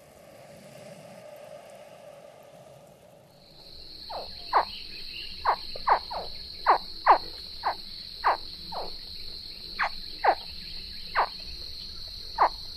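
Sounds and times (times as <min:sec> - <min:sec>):
American alligator chirps as quick descending yelps: 0:03.5 - 0:12.7.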